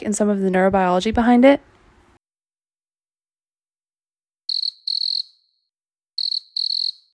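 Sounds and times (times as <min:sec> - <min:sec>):
speech: 0:00.0 - 0:01.7
cricket chirping: 0:04.5 - 0:07.1.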